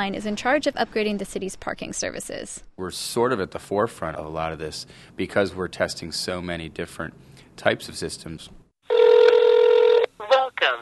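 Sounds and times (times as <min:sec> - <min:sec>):
speech: 0:00.0 - 0:08.6, 0:10.2 - 0:10.8
phone keypad dialing tones for pay-by-phone parking: 0:08.9 - 0:10.1.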